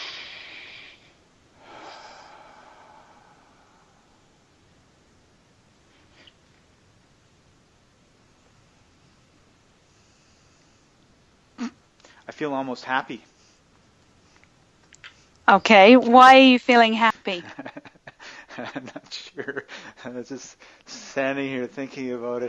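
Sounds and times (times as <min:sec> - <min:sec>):
slow comfortable breath: 0:00.0 - 0:04.6, 0:08.8 - 0:11.1, 0:18.2 - 0:18.6, 0:19.7 - 0:21.2
steady hiss: 0:00.0 - 0:22.4
speech: 0:12.4 - 0:13.3, 0:15.5 - 0:17.7, 0:18.6 - 0:22.4
laughter: 0:17.3 - 0:20.4.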